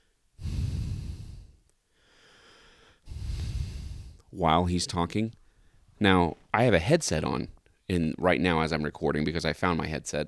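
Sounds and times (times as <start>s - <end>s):
person imitating heavy labored breathing with loud raspy breaths: 0.0s - 4.4s
speech: 4.3s - 5.4s, 6.0s - 10.2s.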